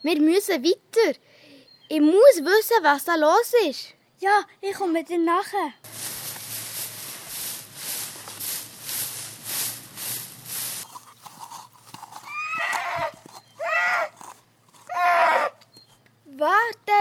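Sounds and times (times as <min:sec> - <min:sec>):
speech: 0:00.0 - 0:06.1
quick steady horse hoofbeats clattering: 0:05.9 - 0:14.9
loud shrill horse whinnies: 0:12.2 - 0:15.6.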